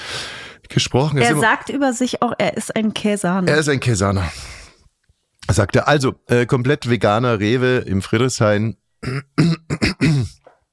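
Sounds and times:
speech: 0.8 - 4.6, 5.5 - 10.4
faint grunt: 9.0 - 10.4
person clearing throat: 9.0 - 10.5.

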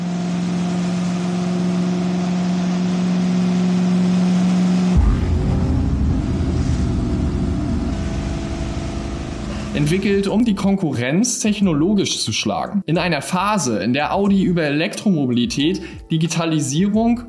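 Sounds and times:
V16 engine of a streamlined Audi racing car idling and revving: 0.0 - 10.4
speech: 9.9 - 17.2.

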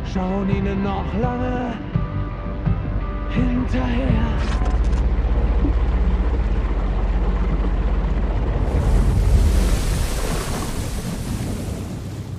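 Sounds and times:
speech: 0.1 - 2.1, 3.3 - 4.8
wind around a boat on the open sea: 4.5 - 12.3
strong waves surging around a boat on the open sea: 5.4 - 12.3.

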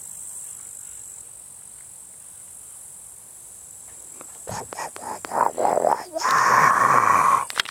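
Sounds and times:
low rough croaks and grunts in a marsh: 4.2 - 7.6.

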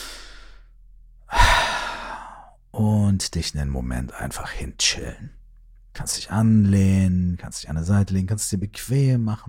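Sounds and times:
deep breath in and out during a guided relaxation: 0.0 - 2.6
speech: 2.8 - 5.4, 6.0 - 9.4.

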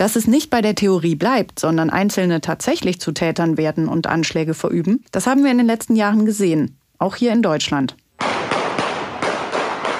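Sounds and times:
speech: 0.0 - 8.0
sharp gunshots captured on a phone: 8.2 - 9.9.

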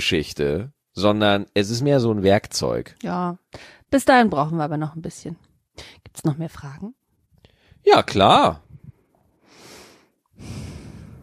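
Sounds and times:
speech: 0.0 - 7.0, 7.8 - 8.7, 10.4 - 10.7
person breathing heavily: 9.4 - 11.2.

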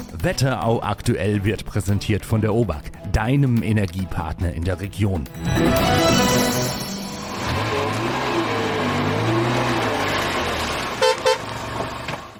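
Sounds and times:
speech: 0.2 - 6.3
car driving past a car dealership in Fernwald Germany: 7.2 - 12.1
short car horn toots: 10.9 - 11.6.

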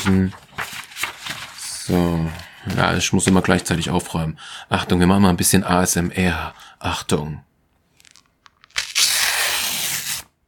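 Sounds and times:
speech: 0.0 - 0.4, 1.9 - 7.5
sheets of paper crinkling and tapping: 0.0 - 3.7, 8.0 - 8.9
sheets of paper being torn in a long ripping tear: 8.0 - 10.3.

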